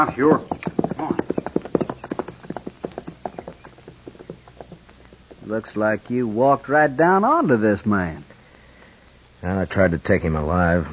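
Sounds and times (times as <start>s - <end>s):
speech: 0.0s - 0.8s, 5.5s - 8.3s, 9.4s - 10.9s
horse hooves clip-clopping: 0.0s - 8.1s.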